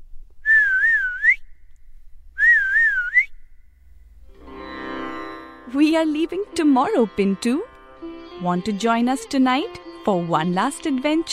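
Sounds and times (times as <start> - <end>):
person whistling a short warbling melody: 0.4 - 1.4, 2.4 - 3.3
speech: 5.7 - 7.7, 8.4 - 11.3.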